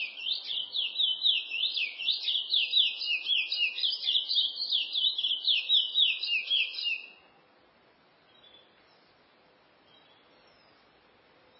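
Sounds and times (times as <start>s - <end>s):
chestnut-bellied seed finch singing slurred whistled notes: 0.0s - 7.1s.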